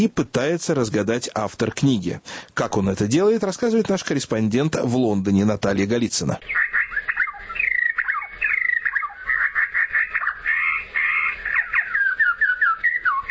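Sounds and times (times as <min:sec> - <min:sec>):
speech: 0:00.0 - 0:06.8
bird singing with chirps trills and whistled notes: 0:06.2 - 0:13.2.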